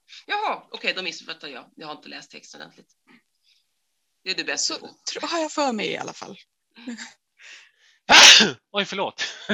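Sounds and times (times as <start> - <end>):
speech: 0.2 - 3.2, 4.2 - 9.5
intake of breath: 7.4 - 8.1
person sneezing: 8.1 - 8.6
person laughing: 9.2 - 9.5.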